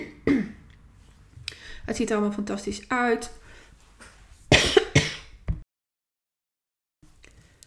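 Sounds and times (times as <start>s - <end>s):
speech: 1.8s - 3.4s
harsh coughing: 4.5s - 5.4s.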